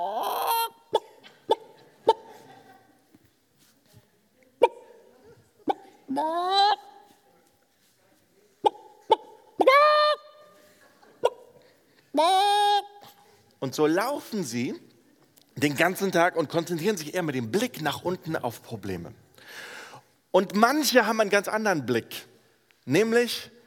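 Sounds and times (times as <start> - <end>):
human voice imitating chickens clucking in a barn: 0.0 - 2.3, 5.6 - 7.0, 8.6 - 10.3, 12.2 - 13.1
speech: 6.2 - 6.4, 13.6 - 14.9, 15.6 - 19.7, 20.4 - 22.3, 22.9 - 23.6.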